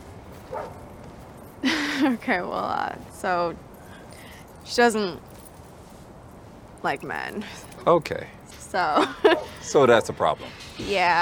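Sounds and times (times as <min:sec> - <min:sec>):
dog bark: 0:00.5 - 0:00.8
speech: 0:02.0 - 0:03.6, 0:04.7 - 0:05.3, 0:06.8 - 0:11.2.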